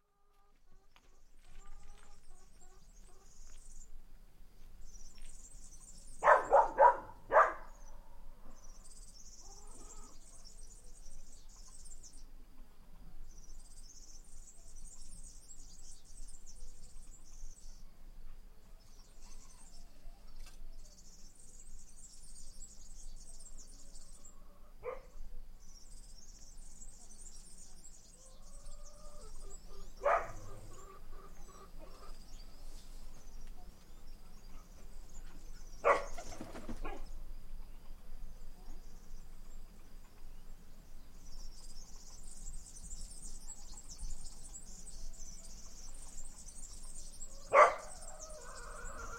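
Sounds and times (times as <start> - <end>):
birds: 0.0 - 49.1
dogs: 6.2 - 7.8, 24.8 - 25.2, 29.8 - 31.0, 35.8 - 37.1, 47.5 - 48.1.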